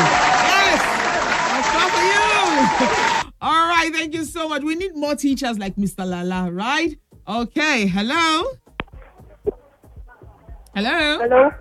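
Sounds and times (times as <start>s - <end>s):
crowd applauding: 0.0s - 3.3s
overlapping voices and calls: 0.0s - 3.3s, 8.7s - 11.6s
speech: 4.5s - 8.6s, 10.8s - 11.6s.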